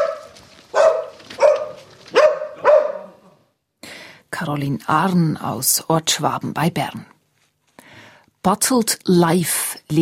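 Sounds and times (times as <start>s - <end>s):
dog barking: 0.0s - 3.4s
speech: 4.4s - 7.1s, 8.4s - 10.0s.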